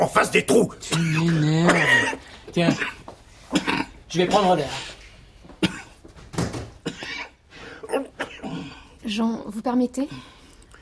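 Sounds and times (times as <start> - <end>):
speech: 0.0 - 3.0, 3.6 - 5.0, 9.1 - 10.3
person with a persistent cough coughing: 0.8 - 4.6, 5.6 - 6.0, 6.8 - 8.9.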